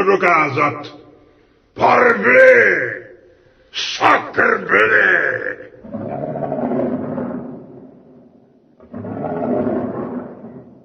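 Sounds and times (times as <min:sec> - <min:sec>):
speech: 0:00.0 - 0:01.0, 0:01.8 - 0:03.0, 0:03.7 - 0:06.4
lion roaring: 0:05.8 - 0:10.8.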